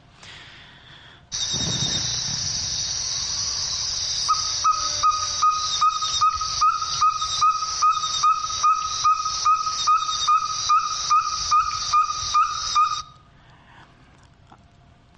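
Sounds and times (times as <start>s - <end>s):
constant loud hiss: 0.0s - 13.4s
small frog or toad calling near a puddle of water: 3.5s - 13.1s.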